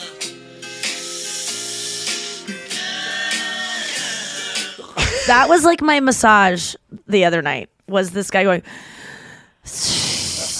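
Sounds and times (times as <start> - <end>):
man breathing heavily: 1.0 - 4.8, 8.7 - 10.5
speech: 5.3 - 9.0, 9.7 - 9.9.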